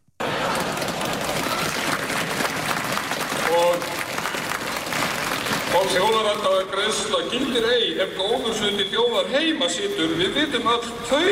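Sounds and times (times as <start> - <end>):
demonstration crowd clapping and cheering in front of Iceland's parliament: 0.2 - 6.7
speech: 5.9 - 11.3.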